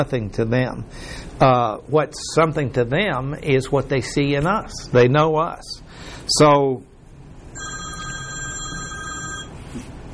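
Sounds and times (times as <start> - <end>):
speech: 0.0 - 6.9
low room hum: 0.0 - 10.1
telephone ringing with a bright electronic trill: 7.6 - 9.6.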